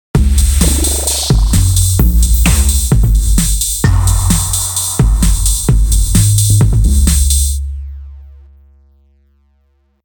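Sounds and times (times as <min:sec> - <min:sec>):
drum without effects: 0:00.1 - 0:08.7.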